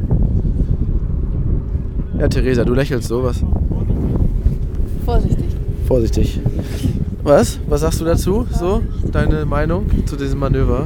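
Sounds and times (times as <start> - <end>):
wind buffeting a microphone outdoors on a boat: 0.0 - 10.8
speech: 2.2 - 4.2, 5.1 - 10.8.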